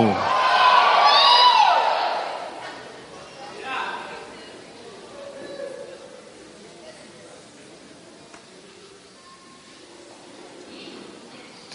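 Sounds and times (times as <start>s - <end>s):
audience shouting in victory: 0.0s - 2.7s.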